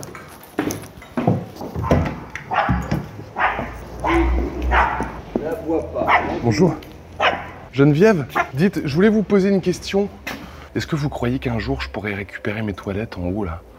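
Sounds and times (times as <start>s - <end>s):
clattering and knocking: 0.1s - 3.9s
dog barking: 1.8s - 5.2s, 6.0s - 6.4s, 7.2s - 7.7s, 8.3s - 8.6s
speech: 6.5s - 6.9s, 7.8s - 13.7s.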